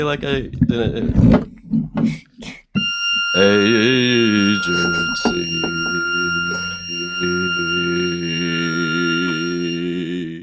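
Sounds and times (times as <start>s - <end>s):
speech: 0.0s - 2.5s, 3.4s - 6.6s
extremely high sung note with piercing tone: 2.8s - 10.2s.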